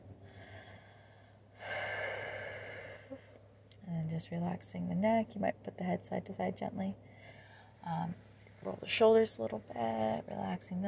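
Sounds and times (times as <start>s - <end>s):
faint steady low hum: 0.0s - 10.8s
deep breath taken during a guided relaxation exercise: 0.1s - 3.4s, 7.0s - 7.8s
speech: 4.2s - 7.0s, 7.9s - 10.8s.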